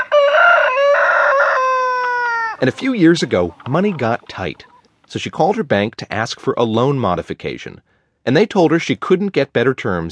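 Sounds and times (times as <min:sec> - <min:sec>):
rooster crowing on a small farm in Washington State: 0:00.0 - 0:02.7
speech: 0:02.6 - 0:10.1.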